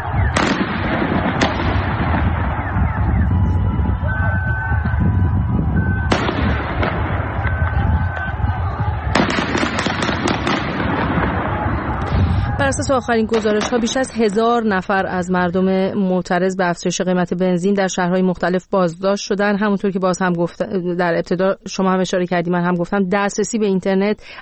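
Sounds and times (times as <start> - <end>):
gunfire on a city street in Iran during protests: 0.0 - 3.3, 6.1 - 12.5, 13.2 - 14.3
roar of crowd and street noise during protests in Iran: 0.0 - 16.7
speech: 12.7 - 24.3.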